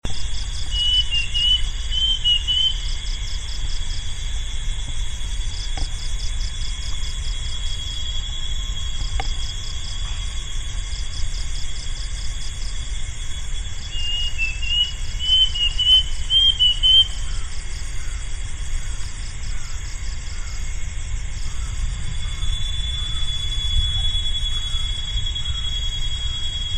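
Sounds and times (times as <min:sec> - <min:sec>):
insect chorus pulsing: 0:00.0 - 0:26.7
low background rumble: 0:00.0 - 0:26.7
plaintive cuckoo giving thin whistled notes: 0:00.7 - 0:02.9, 0:13.8 - 0:17.3, 0:22.2 - 0:26.7.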